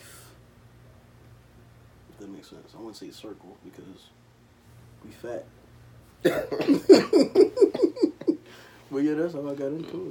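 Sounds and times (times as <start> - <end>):
speech: 2.2 - 4.2, 5.0 - 5.6, 6.2 - 8.1, 8.9 - 10.1
person coughing: 6.2 - 8.0.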